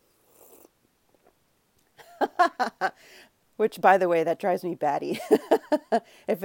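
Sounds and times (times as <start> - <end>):
slurp of hot coffee being sipped: 0.1 - 0.7
speech: 2.3 - 6.4.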